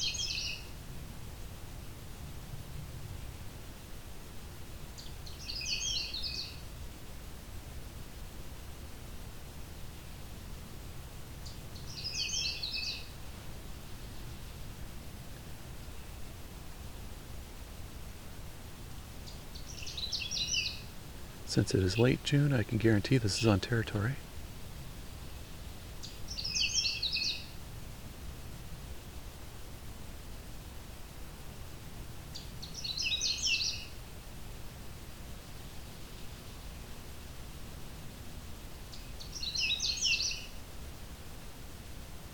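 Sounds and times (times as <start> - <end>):
Canada warbler singing: 0.0 - 0.7, 5.0 - 6.6, 11.4 - 13.2, 19.2 - 20.9, 21.5 - 24.2, 26.0 - 27.5, 32.3 - 34.0, 38.9 - 40.6
steady rushing hiss: 0.0 - 42.3
speech: 21.5 - 24.3.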